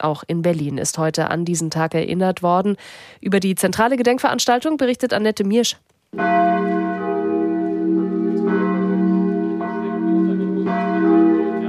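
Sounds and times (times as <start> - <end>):
speech: 0.0 - 6.8
church bells ringing from wooden frame: 6.2 - 11.6.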